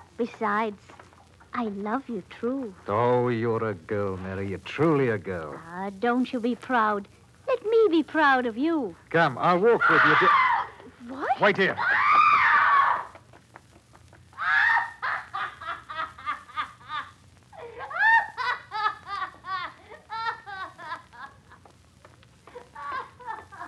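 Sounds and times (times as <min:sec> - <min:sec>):
speech: 0:00.2 - 0:10.4, 0:11.4 - 0:11.9
woman screaming in shrill bursts: 0:09.8 - 0:13.1, 0:14.4 - 0:15.2, 0:17.6 - 0:18.5.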